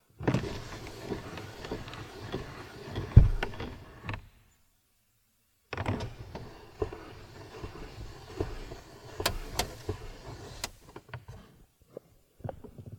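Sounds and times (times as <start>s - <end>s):
car window opening and closing: 0.2s - 3.8s, 5.8s - 10.9s.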